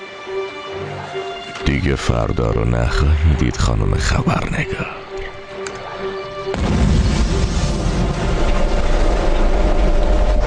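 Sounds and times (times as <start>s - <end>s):
speech: 1.2s - 5.1s
heavy rumbling roar after ship explosion: 6.5s - 10.4s
low crackling debris from exploded ship: 6.5s - 10.4s
ship exploding from a planted bomb: 6.5s - 10.4s.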